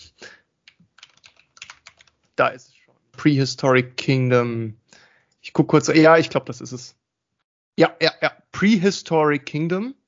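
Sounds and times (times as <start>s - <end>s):
typing on a computer keyboard: 0.7s - 2.2s
speech: 2.4s - 4.8s, 5.5s - 7.0s, 7.8s - 10.0s.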